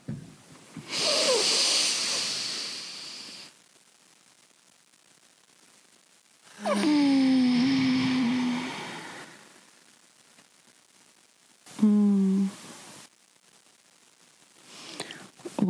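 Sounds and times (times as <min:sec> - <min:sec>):
deep inhale: 0:00.8 - 0:03.5, 0:06.6 - 0:09.6, 0:14.7 - 0:15.4.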